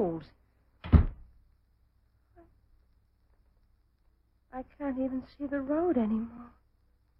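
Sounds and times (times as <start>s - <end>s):
speech: 0.0s - 1.0s, 4.6s - 6.6s
door shutting with a low heavy thunk: 0.8s - 1.3s.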